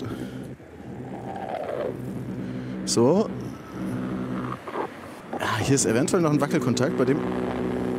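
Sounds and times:
car passing along a street: 0.0 - 7.9
continuous street traffic noise: 0.0 - 7.9
speech: 2.9 - 3.4, 5.7 - 7.6.

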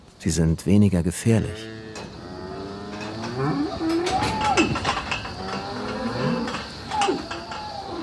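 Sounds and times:
speech: 0.2 - 1.8
hornless dairy cows mooing and lowing inside a loose-housing barn: 1.4 - 8.0
metal clanking: 1.9 - 8.0.

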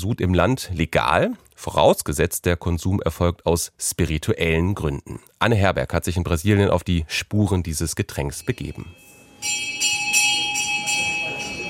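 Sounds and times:
speech: 0.0 - 9.7
bell ringing in a resonant hall during a Santo Daime church ceremony in Brazil: 8.3 - 11.6.

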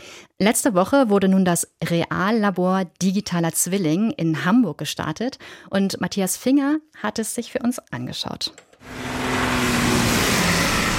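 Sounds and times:
speech: 0.4 - 9.2
heavy road traffic with trucks passing: 8.8 - 10.9.

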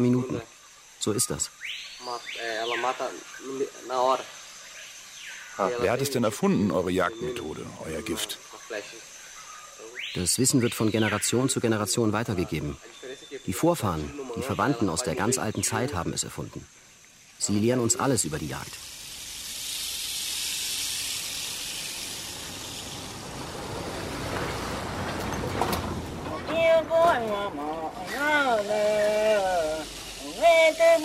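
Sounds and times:
speech: 0.0 - 4.4, 5.6 - 9.1, 9.8 - 16.8, 17.4 - 18.9
boat travelling over river water returning to a village: 22.0 - 30.9.

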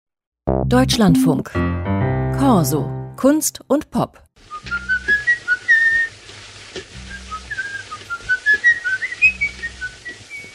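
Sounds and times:
speech: 0.7 - 4.8
man whistling a lilting melody: 4.5 - 6.1, 7.0 - 10.5.

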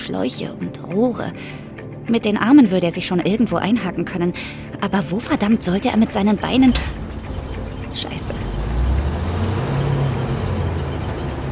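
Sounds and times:
speech: 0.0 - 7.0, 8.0 - 8.4
dense road-noise wash: 5.7 - 11.5
heavy truck low engine drone driving onto a loading ramp: 6.2 - 11.5.

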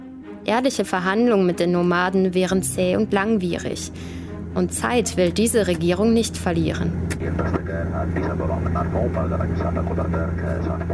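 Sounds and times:
speech: 0.5 - 10.9
steady low airplane engine drone in the cabin: 1.0 - 10.9
faint murmuring voices: 7.2 - 10.9.

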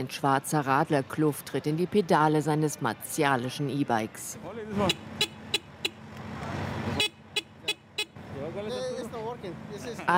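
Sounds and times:
speech: 0.0 - 5.3, 9.5 - 10.1
busy street traffic in Manhattan's Midtown business district: 0.0 - 10.1
short sharp car horn toots: 4.8 - 6.0, 6.9 - 8.2.

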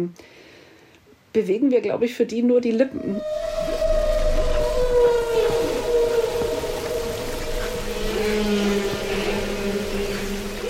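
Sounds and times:
speech: 0.0 - 0.4, 1.3 - 3.7
humpback whale song: 2.9 - 10.6
low hum: 2.9 - 10.6.

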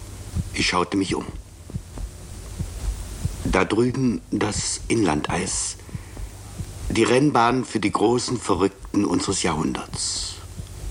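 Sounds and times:
slow heartbeat: 0.0 - 7.2, 8.7 - 9.1, 9.8 - 10.8
faint steady hum: 0.0 - 10.8
speech: 0.6 - 1.4, 3.6 - 5.9, 6.9 - 10.3.

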